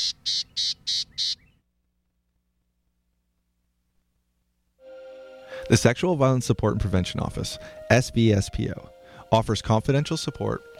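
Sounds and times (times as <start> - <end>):
gnatcatcher calls: 0.0 - 1.6
faint low hum: 1.5 - 5.6
speech: 5.7 - 10.7.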